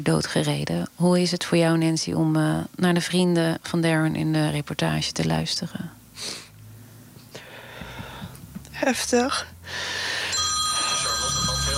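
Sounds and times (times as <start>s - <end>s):
speech: 0.0s - 6.4s, 8.8s - 10.0s
telephone ringing with bright electronic tones: 10.2s - 11.7s.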